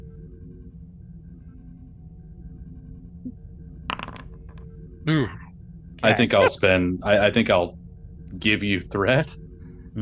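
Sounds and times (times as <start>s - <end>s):
room hum: 0.0s - 10.0s
several dice tumbling on a tabletop: 3.9s - 4.6s
speech: 5.1s - 5.4s, 6.0s - 7.8s, 8.4s - 9.4s.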